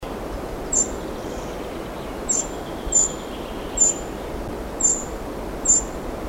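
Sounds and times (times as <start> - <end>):
low constant background hiss: 0.0 - 6.2
Eurasian wren Troglodytes troglodytes ticking calls: 0.6 - 1.5, 2.3 - 4.1, 4.8 - 5.9.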